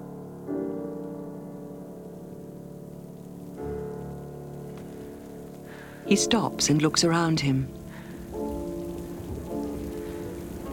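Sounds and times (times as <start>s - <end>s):
heavy rain falling on a city street: 1.3s - 10.7s
speech: 6.1s - 7.8s.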